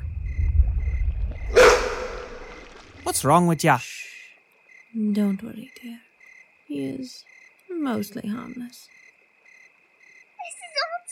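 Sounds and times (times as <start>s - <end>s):
low rumble: 0.0s - 3.0s
brief animal-like yelp: 1.5s - 3.1s
speech: 3.0s - 4.0s, 5.0s - 6.1s, 6.7s - 9.0s.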